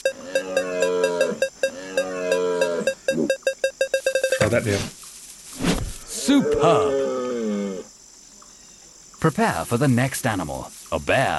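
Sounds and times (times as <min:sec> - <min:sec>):
electronic video game aiming beeps: 0:00.0 - 0:04.6
sustained synthetic tone: 0:00.0 - 0:04.6
speech: 0:04.5 - 0:05.0, 0:06.3 - 0:07.1, 0:09.2 - 0:11.3.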